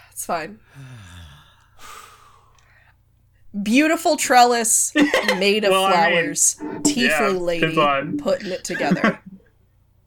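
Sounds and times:
speech: 0:00.2 - 0:01.2, 0:03.6 - 0:09.3
deep breath drawn in by a group taking a moment to reset together: 0:00.7 - 0:02.9
laughter: 0:05.0 - 0:09.4.

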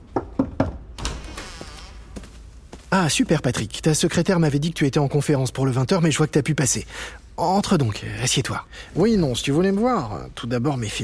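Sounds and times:
knocking on a door: 0:00.1 - 0:00.9
speech: 0:02.9 - 0:11.0.

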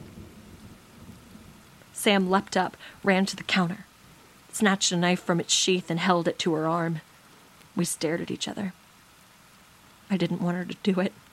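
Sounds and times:
low rolling rumble of thunder: 0:00.0 - 0:02.6
steady rainfall: 0:00.0 - 0:11.3
speech: 0:02.0 - 0:03.9, 0:04.6 - 0:07.1, 0:07.8 - 0:08.8, 0:10.1 - 0:11.2.

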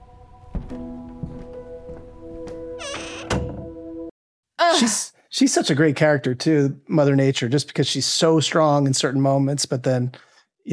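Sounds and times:
speech: 0:00.7 - 0:01.0, 0:04.7 - 0:10.7
door pulled shut with creak and thud: 0:02.5 - 0:04.1.

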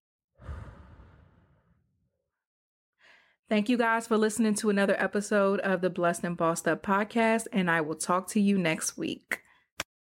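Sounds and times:
deep exhale during a guided calming breathing exercise: 0:00.4 - 0:01.8
speech: 0:03.5 - 0:09.4.

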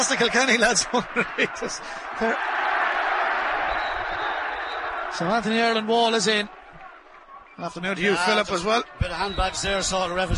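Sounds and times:
laughter: 0:00.0 - 0:02.4
speech: 0:00.0 - 0:02.6, 0:05.2 - 0:06.6, 0:07.6 - 0:10.3
large crowd cheering at a hurling match: 0:00.0 - 0:10.3.

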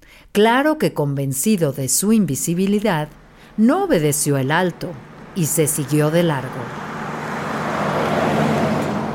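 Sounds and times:
speech: 0:00.3 - 0:06.9
car speeding along the road: 0:04.7 - 0:09.1.

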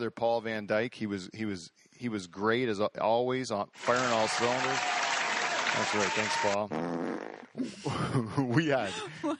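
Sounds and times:
speech: 0:00.0 - 0:09.3
wet juicy fart noise imitated by a voice: 0:06.5 - 0:07.7.

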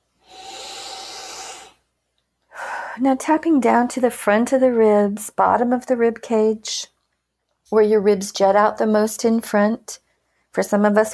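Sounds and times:
deep breath taken during a tapping exercise: 0:00.2 - 0:01.9, 0:02.5 - 0:03.0
speech: 0:03.0 - 0:06.9, 0:07.7 - 0:10.0, 0:10.6 - 0:11.1.

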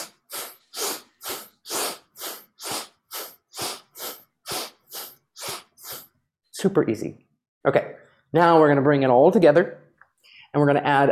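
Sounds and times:
shallow breathing through the nose in a breathing exercise: 0:00.0 - 0:06.2
speech: 0:06.6 - 0:09.8, 0:10.5 - 0:11.1.

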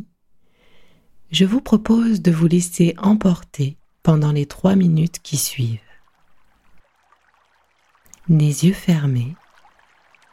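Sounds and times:
speech: 0:01.3 - 0:05.9, 0:08.3 - 0:09.4
stream water flowing and trickling: 0:03.0 - 0:10.3.

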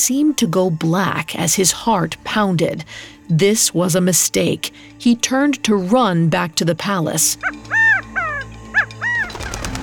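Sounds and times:
speech: 0:00.0 - 0:07.9
partridge chirping frantically: 0:07.4 - 0:09.8
partridge flapping up with rapid fluttering wingbeats: 0:07.7 - 0:09.8.

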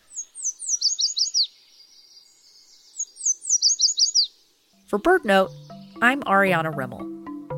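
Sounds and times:
Yellow Warbler singing: 0:00.0 - 0:07.4
speech: 0:04.9 - 0:07.2.

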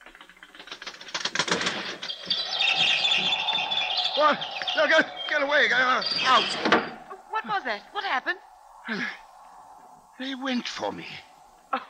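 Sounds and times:
fluttering and tapping: 0:00.0 - 0:06.9
faint chirps: 0:00.6 - 0:11.8
sustained higher-pitched twittering: 0:01.4 - 0:11.8
speech: 0:04.2 - 0:09.2, 0:10.2 - 0:11.8.

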